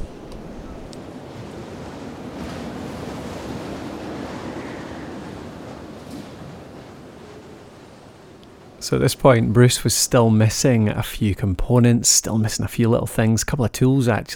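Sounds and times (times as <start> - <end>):
wind blowing over a tent lying in a heap: 0.0 - 8.8
speech: 8.8 - 14.3.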